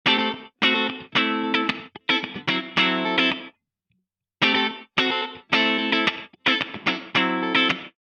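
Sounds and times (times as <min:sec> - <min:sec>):
guitar with ducking and gate effects: 0:00.0 - 0:03.6, 0:04.4 - 0:07.9.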